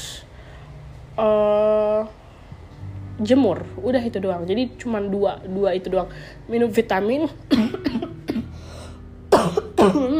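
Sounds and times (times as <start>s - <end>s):
speech: 1.2s - 2.2s, 3.2s - 8.0s
person coughing with short dry hacks: 7.5s - 8.5s, 9.3s - 10.1s.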